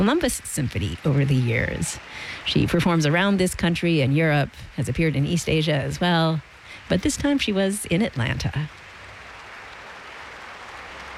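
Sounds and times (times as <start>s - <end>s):
audience applause after a classical concert performance in Atlanta: 0.0s - 3.4s, 9.2s - 11.1s
speech: 0.0s - 8.8s.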